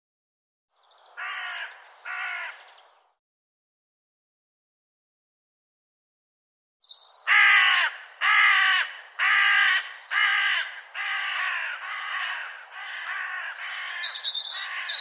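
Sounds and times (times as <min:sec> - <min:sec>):
bird giving harsh hoarse caws: 0:01.2 - 0:02.8, 0:07.2 - 0:15.0.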